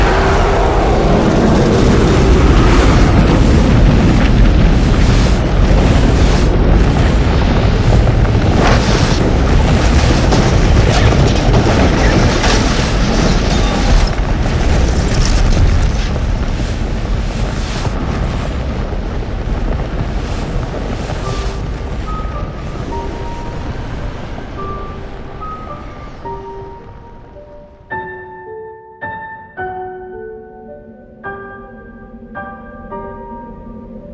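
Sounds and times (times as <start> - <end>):
massive explosion of an entire building block: 0.0 - 27.1
crackling debris: 0.0 - 27.9.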